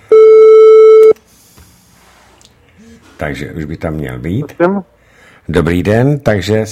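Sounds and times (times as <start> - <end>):
telephone call tone while dialing: 0.1 - 1.2
speech: 3.2 - 6.6.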